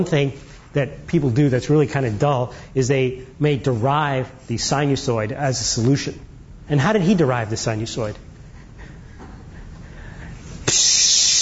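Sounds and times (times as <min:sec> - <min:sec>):
speech: 0:00.0 - 0:08.3
aerosol spray paint can spraying: 0:10.6 - 0:11.4.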